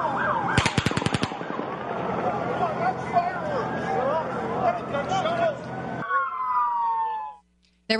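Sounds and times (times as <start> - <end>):
wailing siren: 0.0 - 7.5
gunshots on police body camera audio: 0.5 - 2.8.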